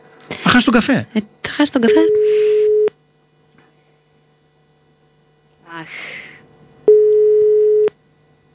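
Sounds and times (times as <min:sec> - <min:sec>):
faint hum: 0:00.0 - 0:08.5
speech: 0:00.5 - 0:02.6
telephone busy tone during a call: 0:02.0 - 0:02.9, 0:06.9 - 0:07.9.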